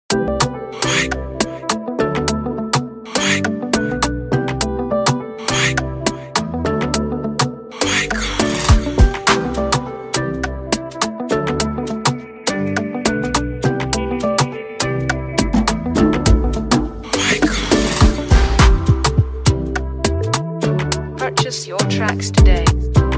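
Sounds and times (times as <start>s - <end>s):
Afrobeat instrumental music: 0.1s - 23.1s.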